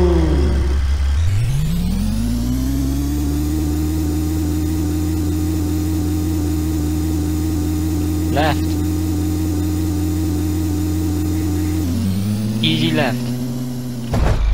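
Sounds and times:
racing-game car engine revving: 0.0 - 14.5
speech: 13.0 - 13.3.

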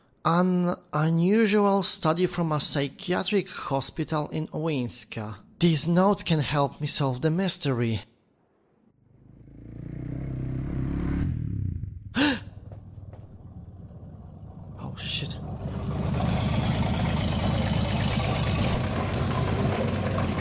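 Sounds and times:
speech: 0.2 - 8.1
car and motorcycle engines roaring while racing in a video game: 9.0 - 20.3
car engine rumbling in a video game: 9.1 - 20.3.

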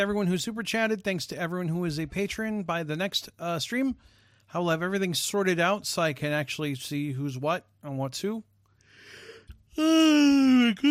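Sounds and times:
speech: 0.0 - 8.5, 9.8 - 10.9
person yawning: 9.1 - 10.9.

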